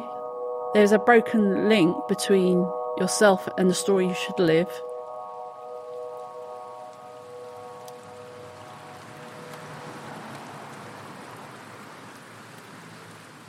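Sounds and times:
speech: 0.7s - 4.9s
drips and patters on surfaces: 3.0s - 13.4s
steady rain pouring: 3.0s - 13.4s.

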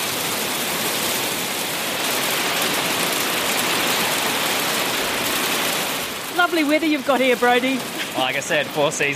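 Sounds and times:
heavy hail pelting a hard surface on Anchor Island in Fiordland: 0.0s - 9.1s
speech: 6.5s - 9.1s.

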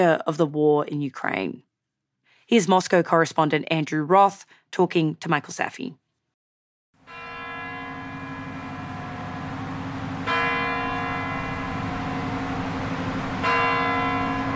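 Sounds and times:
speech: 0.0s - 1.7s, 2.5s - 6.0s
deep resonant clock tower bells around Red Square in Moscow: 7.1s - 14.5s
sustained humming tone: 7.6s - 14.5s.

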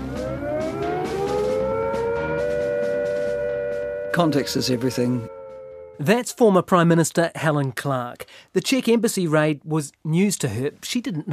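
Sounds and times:
civil defense siren warning of nuclear attack: 0.0s - 6.4s
speech: 4.2s - 5.4s, 6.0s - 11.3s.

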